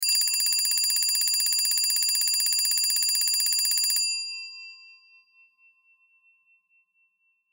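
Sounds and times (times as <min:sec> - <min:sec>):
alarm clock bell ringing: 0:00.0 - 0:05.1.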